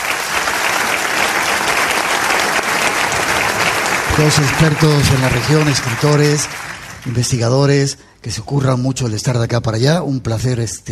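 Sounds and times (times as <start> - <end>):
live audience applause: 0.0 - 7.5
speech: 4.2 - 10.9.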